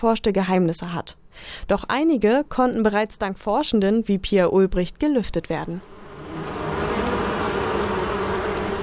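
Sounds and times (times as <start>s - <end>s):
speech: 0.0s - 6.0s
western honeybees buzzing: 5.8s - 8.8s.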